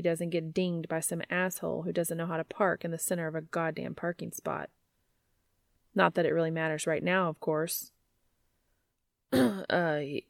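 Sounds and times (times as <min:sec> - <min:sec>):
speech: 0:00.0 - 0:04.8, 0:06.0 - 0:08.0, 0:09.3 - 0:10.2
man clearing his throat: 0:09.3 - 0:09.7.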